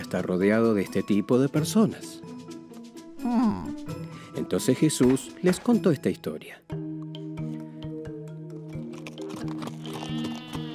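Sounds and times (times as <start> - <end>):
speech: 0.1 - 2.4, 3.2 - 6.8
sheep bleating: 9.7 - 10.7.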